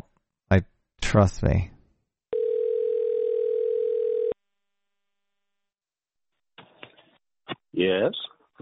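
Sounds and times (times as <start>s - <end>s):
speech: 0.5s - 1.7s, 7.8s - 8.6s
telephone dial tone: 2.3s - 4.4s.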